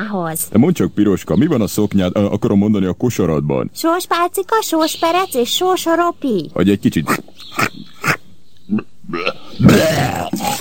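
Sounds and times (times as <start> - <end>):
speech: 0.1 - 10.6
voice acting out a wolf retching and vomiting: 7.0 - 10.6.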